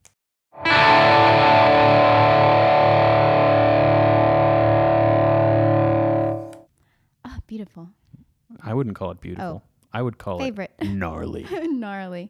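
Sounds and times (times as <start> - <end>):
heavily distorted electric guitar D chord with open E string ringing: 0.6 - 6.6
speech: 7.6 - 8.0, 8.6 - 12.2.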